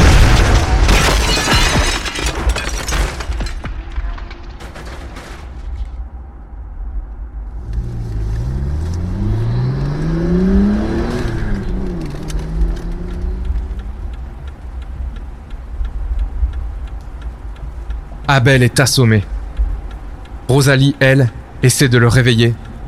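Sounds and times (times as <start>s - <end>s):
car crashing into a tree: 0.0s - 6.0s
shattering debris: 0.0s - 6.0s
car engine revving: 7.4s - 16.0s
speech: 18.3s - 19.4s, 20.5s - 22.7s.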